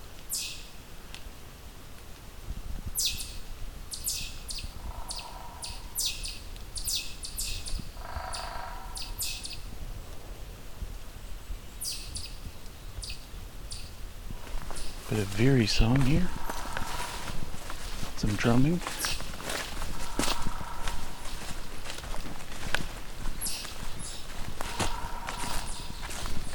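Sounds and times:
steady outdoor hiss: 0.0 - 26.5
pine warbler soft trill song: 0.3 - 0.8, 3.0 - 9.7, 11.6 - 14.0, 14.6 - 17.2, 23.4 - 26.5
speech: 15.2 - 16.4, 18.3 - 19.2.

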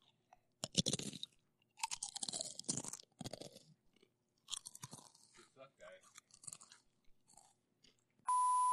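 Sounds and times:
crunching with mouth open and cheeks puffed out: 0.0 - 8.2
short steady tone: 8.3 - 8.7.

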